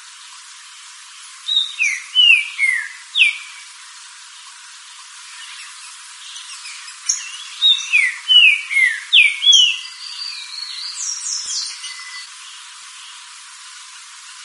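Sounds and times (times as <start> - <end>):
green-winged saltator singing rich descending whistled notes: 1.4 - 3.7, 5.3 - 12.3.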